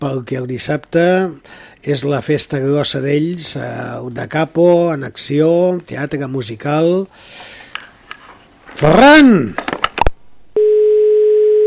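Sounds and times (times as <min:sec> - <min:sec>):
speech: 0:00.0 - 0:07.6, 0:08.8 - 0:09.8
telephone dialing beeps: 0:10.6 - 0:11.6.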